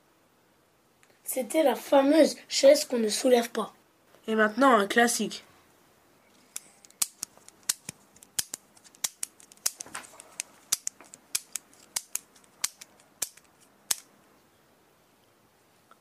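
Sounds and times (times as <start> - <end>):
speech: 1.3 - 5.5
four-colour ballpoint pen clicking: 6.8 - 14.1.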